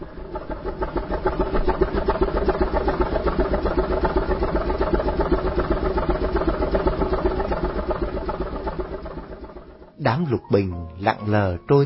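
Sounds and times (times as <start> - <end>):
heavy ferry engine chugging with low rhythmic throb: 0.0 - 11.8
speech: 10.2 - 11.8.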